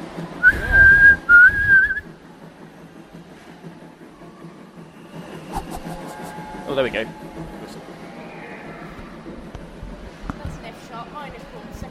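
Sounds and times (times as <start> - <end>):
train whistle sounding an F sharp minor chord in second inversion: 0.4 - 2.1, 4.8 - 7.4
speech: 6.8 - 7.3.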